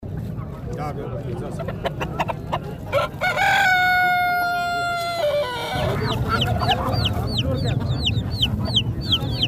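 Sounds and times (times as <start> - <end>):
domestic chickens clucking and chirping at a Friday bazaar in Tarinkot town: 0.1 - 9.4
speech: 0.8 - 3.3
rooster crowing at a Friday bazaar in Tarinkot town: 2.9 - 6.8.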